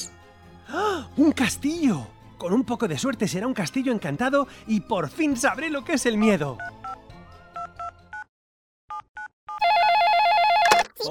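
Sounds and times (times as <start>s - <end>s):
speech: 0.7s - 6.9s
telephone keypad beeps: 8.9s - 11.0s
telephone warbling ring tone: 9.6s - 10.8s.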